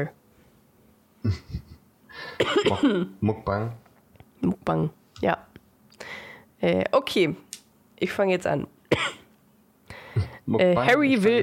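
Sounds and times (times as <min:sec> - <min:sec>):
speech: 0:00.0 - 0:00.2, 0:01.2 - 0:01.7, 0:02.3 - 0:03.8, 0:04.4 - 0:05.5, 0:06.6 - 0:07.4, 0:08.0 - 0:09.2, 0:10.5 - 0:11.4
person coughing: 0:02.4 - 0:03.1, 0:08.9 - 0:09.3.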